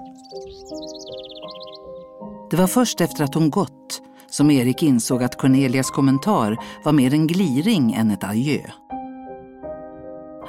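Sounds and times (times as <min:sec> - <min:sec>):
birds chirping: 0:00.0 - 0:04.3
speech: 0:02.5 - 0:03.8, 0:04.4 - 0:08.8.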